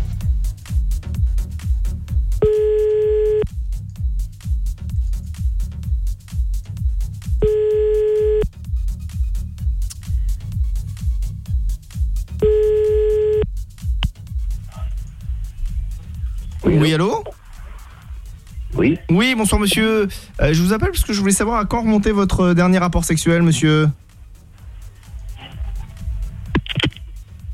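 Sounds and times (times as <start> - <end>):
constant low rumbling background: 0.0 - 27.5
phone ringback beeps while a call is placed: 2.4 - 3.4, 7.4 - 8.4, 12.4 - 13.4
speech: 19.2 - 24.1.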